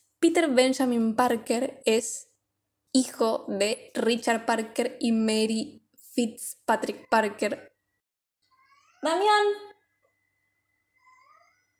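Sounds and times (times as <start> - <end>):
speech: 0.2 - 2.3, 2.9 - 7.7, 9.0 - 9.7
cat meowing outside in the yard: 8.5 - 9.2.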